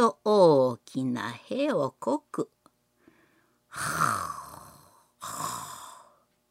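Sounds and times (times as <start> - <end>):
speech: 0.0 - 2.6
voice imitating a man snoring on a futon: 3.7 - 6.2.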